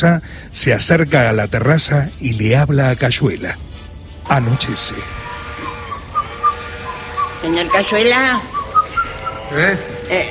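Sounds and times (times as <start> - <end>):
speech: 0.0 - 3.7, 4.3 - 5.2, 7.4 - 8.6, 9.5 - 10.2
man whistling a lilting tango tune: 5.6 - 9.5.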